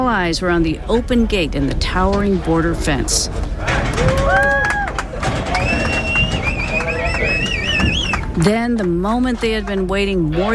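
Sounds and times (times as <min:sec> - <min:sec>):
speech: 0:00.1 - 0:04.4, 0:08.4 - 0:10.5
trampling hooves of cattle herded by riders on horseback: 0:03.3 - 0:09.9
cowboys on horseback whooping and whistling over the herd: 0:04.2 - 0:08.3.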